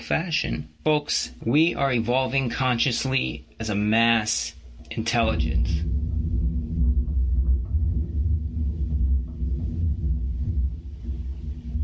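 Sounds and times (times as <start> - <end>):
speech: 0.0 - 5.9
thunder rumbling: 4.7 - 11.8.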